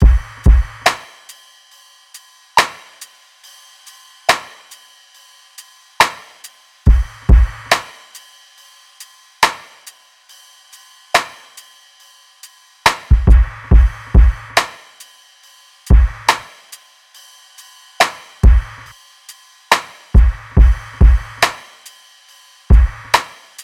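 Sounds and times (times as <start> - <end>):
full drum loop: 0.0 - 1.2, 6.9 - 8.0, 12.9 - 14.8, 15.9 - 16.7, 18.0 - 18.9, 19.7 - 21.9, 22.7 - 23.6.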